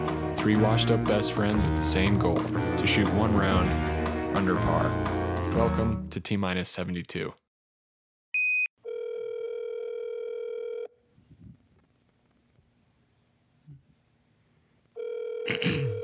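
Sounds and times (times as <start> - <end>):
speech: 0.4 - 7.4
short high beep: 8.4 - 8.7
phone line ring tone while waiting for an answer: 8.4 - 11.0, 15.0 - 16.0.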